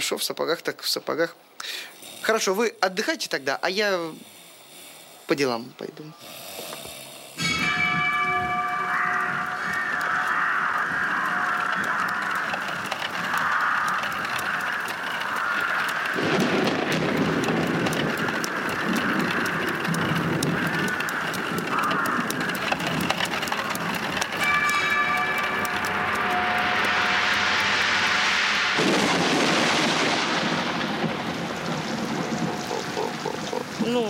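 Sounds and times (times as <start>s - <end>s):
speech: 0.0s - 4.4s, 5.3s - 6.5s
steady dense rain hissing: 1.4s - 34.0s
low rumbling drone: 7.1s - 33.8s.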